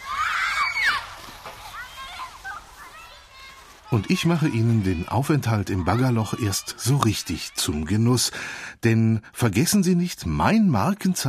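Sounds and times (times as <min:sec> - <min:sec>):
children shrieking and shouting playfully outdoors: 0:00.0 - 0:08.3
water sloshing and splashing: 0:00.0 - 0:08.5
speech: 0:03.9 - 0:11.2.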